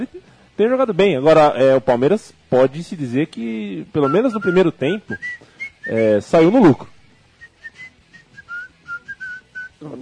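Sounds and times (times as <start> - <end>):
speech: 0.0 - 6.9, 9.8 - 10.0
person whistling a short faint tune: 4.0 - 6.1, 7.4 - 9.8.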